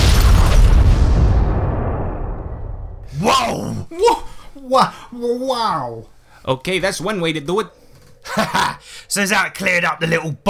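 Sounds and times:
crypt exploding with a rumbling boom: 0:00.0 - 0:03.1
speech: 0:03.9 - 0:10.4.

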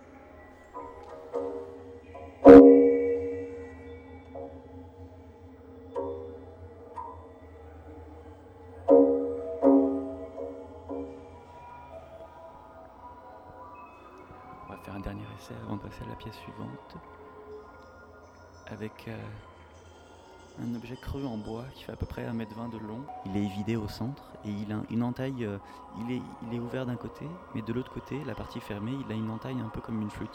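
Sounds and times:
lead drain pipe struck ringing: 0:00.8 - 0:05.1, 0:05.8 - 0:11.6
speech: 0:15.4 - 0:17.2, 0:18.7 - 0:19.5, 0:20.6 - 0:30.3.

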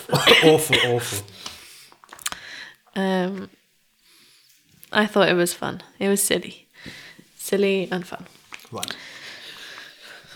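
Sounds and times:
two people coughing: 0:00.0 - 0:01.3
speech: 0:00.2 - 0:01.5, 0:03.0 - 0:03.6, 0:04.9 - 0:09.1.

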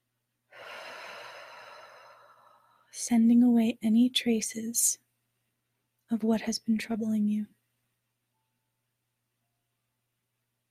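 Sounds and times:
deep exhaling breath during guided meditation: 0:00.5 - 0:02.8
speech: 0:03.0 - 0:05.0, 0:06.1 - 0:07.6.

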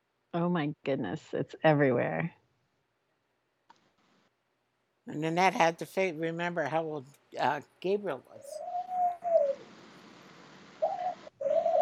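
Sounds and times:
faint steady hiss: 0:00.0 - 0:11.8
speech: 0:00.3 - 0:02.4, 0:05.1 - 0:08.7
pet bird cooing: 0:08.4 - 0:09.6, 0:10.8 - 0:11.8.

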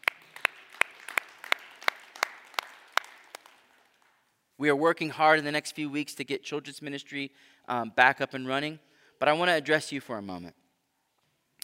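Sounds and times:
audience applauding: 0:00.0 - 0:04.3
speech: 0:04.6 - 0:10.6.

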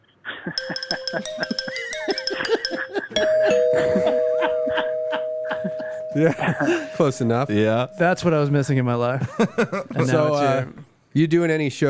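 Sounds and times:
speech: 0:00.4 - 0:04.0, 0:06.2 - 0:11.8
xylophone-like doorbell chime: 0:00.6 - 0:08.8.

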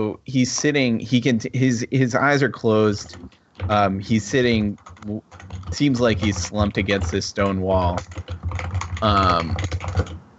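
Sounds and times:
speech: 0:00.0 - 0:10.2
typing on a computer keyboard: 0:02.8 - 0:10.2.

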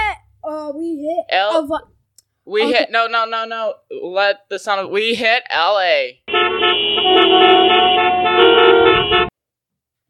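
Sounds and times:
speech: 0:00.7 - 0:09.3
car horns honking in slow traffic in Los Angeles: 0:06.3 - 0:09.3.

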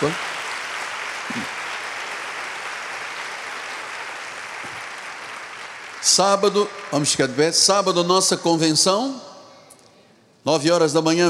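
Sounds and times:
speech: 0:00.0 - 0:00.3, 0:06.1 - 0:09.3, 0:10.4 - 0:11.2
large audience applauding at a church service: 0:00.0 - 0:07.4.

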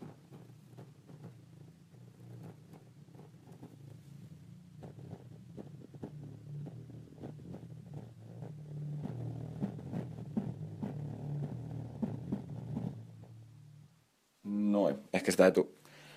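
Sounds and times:
wearable subwoofer rumbling low bass frequencies: 0:05.2 - 0:14.0
speech: 0:15.2 - 0:15.7.

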